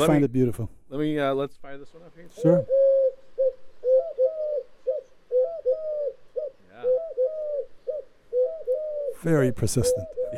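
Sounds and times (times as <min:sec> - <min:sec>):
speech: 0:00.0 - 0:03.1, 0:09.2 - 0:10.3
collared dove cooing: 0:02.3 - 0:10.3.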